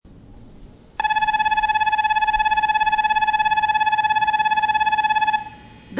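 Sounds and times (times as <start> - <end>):
train station bell: 1.0 - 5.8.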